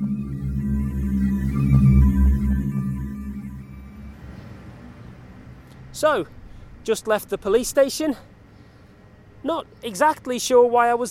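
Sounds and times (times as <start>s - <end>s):
low humming drone from a steel orb: 0.0s - 5.4s
speech: 6.0s - 8.3s, 9.4s - 11.0s.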